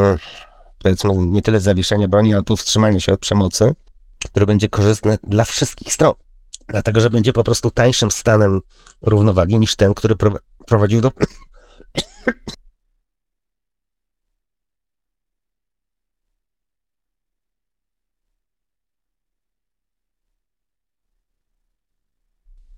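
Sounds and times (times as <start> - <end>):
speech: 0.0 - 12.6
harsh coughs: 11.2 - 12.7
throat clearing: 11.2 - 12.7.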